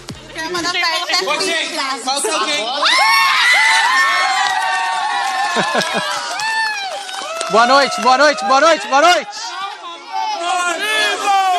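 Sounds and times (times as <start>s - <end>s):
speech: 0.5s - 4.0s, 5.6s - 6.2s, 7.5s - 9.4s
excited group shouting and cheering at a presenter on TV: 1.1s - 11.5s
laughter: 2.0s - 4.3s, 5.0s - 6.6s
overlapping high-pitched voices and whoops: 2.8s - 8.1s.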